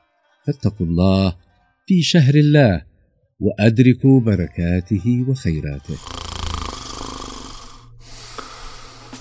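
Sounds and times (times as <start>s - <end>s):
speech: 0.4s - 6.1s
person snoring while asleep: 5.8s - 9.1s.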